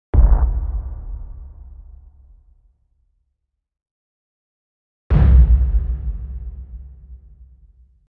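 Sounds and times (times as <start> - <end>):
bass impact of a low drum with long reverb: 0.2 - 2.4, 5.1 - 7.4.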